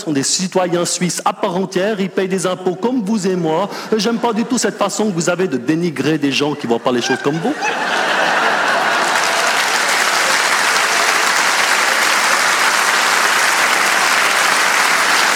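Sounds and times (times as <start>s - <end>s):
speech: 0.0s - 8.3s
laughter: 3.4s - 5.3s, 6.3s - 15.3s
large audience of party supporters applauding in a hall: 7.0s - 15.3s.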